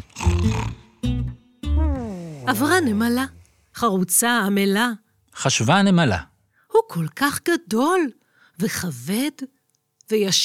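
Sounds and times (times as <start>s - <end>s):
leopard roaring: 1.9s - 3.5s
speech: 2.5s - 10.4s.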